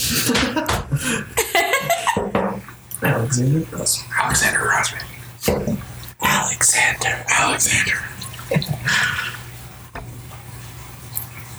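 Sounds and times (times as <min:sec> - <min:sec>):
laughter: 0:00.0 - 0:05.8, 0:07.7 - 0:09.7
quiet hum: 0:00.0 - 0:11.5
speech: 0:00.1 - 0:01.4, 0:03.0 - 0:05.9, 0:06.9 - 0:09.3
saison beer from a can pouring into a glass: 0:02.5 - 0:11.5.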